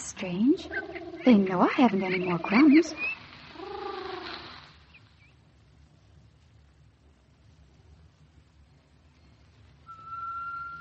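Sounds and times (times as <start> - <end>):
speech: 0.2 - 3.1
whistling tea kettle: 9.8 - 10.8.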